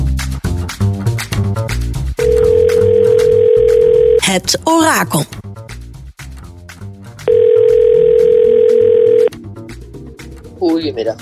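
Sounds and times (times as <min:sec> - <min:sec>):
music: 0:00.0 - 0:11.2
electronic telephone ringing tone of an outgoing call: 0:02.2 - 0:04.2, 0:07.3 - 0:09.3
speech: 0:04.3 - 0:05.4, 0:10.8 - 0:11.2.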